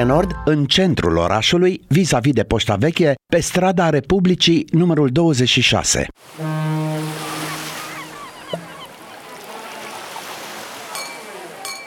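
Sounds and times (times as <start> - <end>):
speech: 0.0 - 7.3
deep horn blast: 6.2 - 8.7
ocean surf breaking on the shore: 6.2 - 11.8
faint bird calls at the seaside: 7.0 - 11.6.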